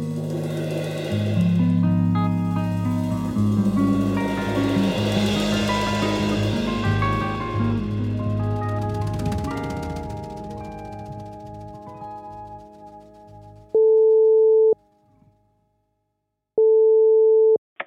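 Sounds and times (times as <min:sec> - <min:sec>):
music: 0:00.0 - 0:15.0
phone ringback tone: 0:13.8 - 0:14.8, 0:16.6 - 0:17.6.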